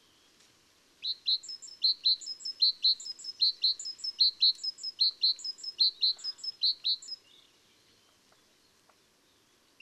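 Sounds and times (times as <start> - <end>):
great tit Parus major singing a rhythmic phrase: 1.0 - 7.4.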